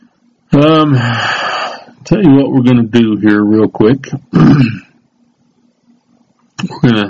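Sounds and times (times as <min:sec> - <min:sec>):
speech: 0:00.6 - 0:01.4, 0:02.1 - 0:04.8, 0:06.6 - 0:07.0
man clearing his throat: 0:04.3 - 0:05.0.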